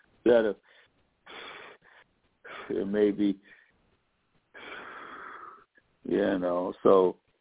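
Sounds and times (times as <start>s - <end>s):
speech: 0.2s - 0.7s, 2.7s - 3.6s, 6.0s - 7.2s
faint breath: 0.6s - 2.8s, 3.4s - 3.8s, 4.5s - 5.8s
strained wheezy breath with a slight catch: 0.6s - 2.8s, 4.5s - 5.8s.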